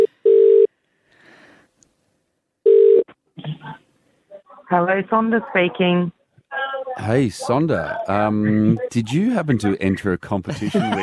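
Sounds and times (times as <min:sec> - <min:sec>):
long telephone tones of a number being dialed: 0:00.0 - 0:00.7, 0:02.7 - 0:03.1
speech: 0:04.7 - 0:06.2, 0:07.0 - 0:11.0
laughter: 0:10.3 - 0:11.0.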